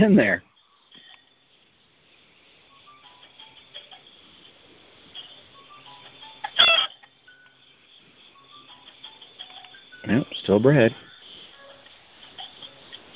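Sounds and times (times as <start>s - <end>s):
speech: 0.0s - 0.5s, 10.0s - 11.1s
chicken squawk: 6.6s - 6.9s.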